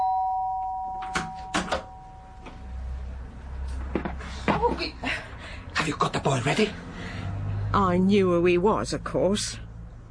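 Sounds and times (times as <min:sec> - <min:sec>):
doorbell ringing: 0:00.0 - 0:02.8
speech: 0:04.7 - 0:06.9, 0:07.7 - 0:09.6.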